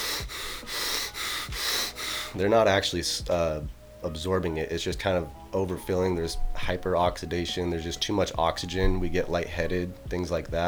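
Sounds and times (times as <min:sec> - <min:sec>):
rapid heavy breathing as over-breathing: 0:00.0 - 0:03.8
speech: 0:02.4 - 0:10.6.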